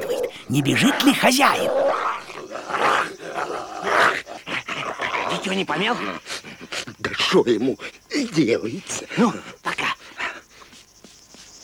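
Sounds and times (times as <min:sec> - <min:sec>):
dog growling and snarling in mock attack in a field: 0:00.0 - 0:07.2
speech: 0:00.5 - 0:02.2, 0:05.4 - 0:06.4, 0:07.3 - 0:09.5.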